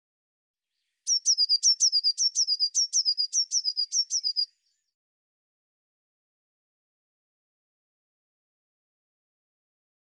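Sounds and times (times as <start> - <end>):
Eurasian blue tit churring call: 1.1 - 4.4.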